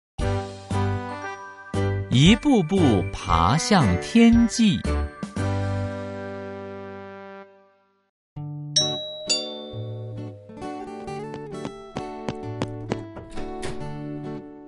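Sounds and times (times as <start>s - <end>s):
bright bell-like melody: 1.4s - 5.5s, 8.8s - 11.6s
speech: 2.2s - 5.0s
ding-dong doorbell chime: 8.8s - 11.5s.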